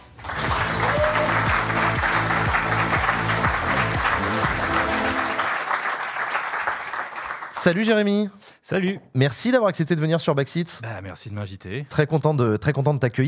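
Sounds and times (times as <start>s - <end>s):
studio audience applause: 0.0s - 7.8s
rhythmic musical jingle: 0.5s - 5.6s
speech: 7.6s - 13.2s.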